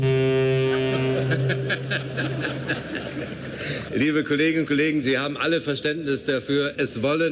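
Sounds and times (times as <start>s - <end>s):
deep steady foghorn blast: 0.0s - 2.6s
crowd chuckling and laughing: 0.4s - 4.2s
speech: 1.4s - 3.0s, 3.9s - 7.3s.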